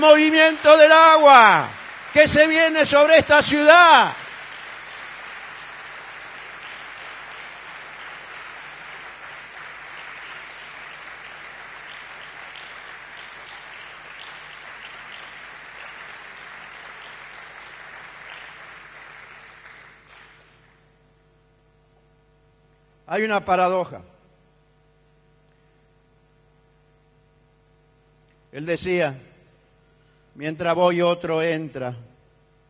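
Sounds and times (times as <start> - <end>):
speech: 0.0 - 4.2, 23.1 - 24.1, 28.5 - 29.3, 30.4 - 32.1
church congregation applauding during a service: 0.0 - 21.0.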